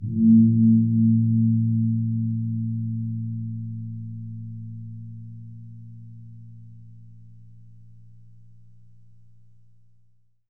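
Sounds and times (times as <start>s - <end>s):
deep bass swell: 0.0s - 7.3s.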